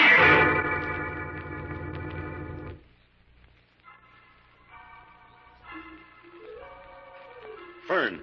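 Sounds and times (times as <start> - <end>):
wild gypsy-style music crackling over a radio: 0.1 - 8.1.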